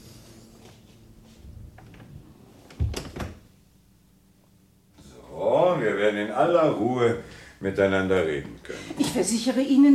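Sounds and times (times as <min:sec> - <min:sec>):
door being closed: 0:01.7 - 0:03.5
speech: 0:06.1 - 0:09.9.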